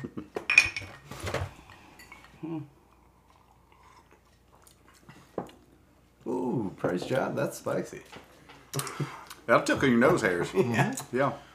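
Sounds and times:
glasses of rye whiskey with ice clinking in a toast: 0.4s - 1.1s, 1.7s - 2.4s
speech: 2.4s - 2.8s, 6.8s - 11.5s.

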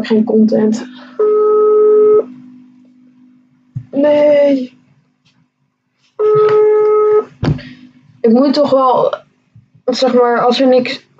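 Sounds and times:
speech: 0.0s - 1.0s, 3.9s - 4.8s, 6.2s - 6.8s, 8.2s - 9.2s, 9.9s - 11.1s
faint low hum: 0.0s - 11.1s
ringback tone from an outgoing phone call: 0.8s - 2.4s, 6.2s - 7.4s.

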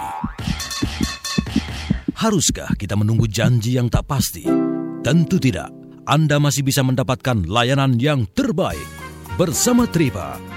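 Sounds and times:
low irregular heartbeat thumps: 0.0s - 4.4s
speech: 2.2s - 10.5s.

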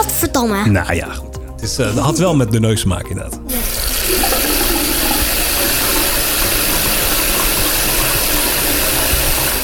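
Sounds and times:
speech: 0.3s - 4.2s
water tap running in a steady gush: 3.5s - 9.6s.

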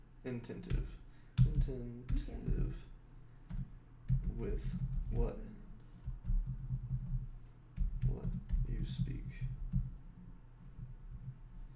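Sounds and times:
speech: 0.2s - 2.9s, 4.4s - 5.6s, 8.1s - 9.6s
typing on a computer keyboard: 3.5s - 5.3s, 6.0s - 9.9s.

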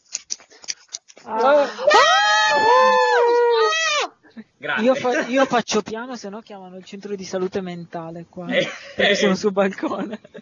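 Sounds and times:
person crying out with joy: 1.3s - 4.1s
speech: 4.8s - 10.4s.

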